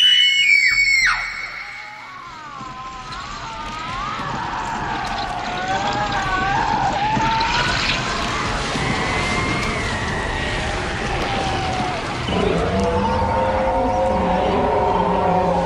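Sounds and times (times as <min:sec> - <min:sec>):
loud rumbling noisy background: 0:00.0 - 0:15.6
people screaming in a horror film scene: 0:00.0 - 0:15.6.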